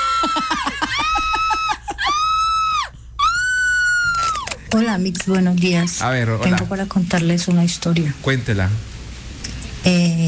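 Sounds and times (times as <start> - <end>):
loud high-pitched recorded scream: 0.0 - 4.5
speech: 4.7 - 8.9, 9.8 - 10.2.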